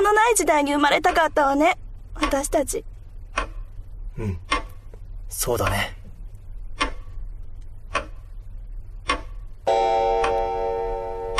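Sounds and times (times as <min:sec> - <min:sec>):
large grandfather pendulum clock ticking: 0:00.0 - 0:06.0, 0:06.6 - 0:11.3
low room hum: 0:00.0 - 0:11.3
speech: 0:00.1 - 0:03.5, 0:04.2 - 0:04.5, 0:05.3 - 0:06.0
chime-like ringing tone: 0:09.7 - 0:11.3.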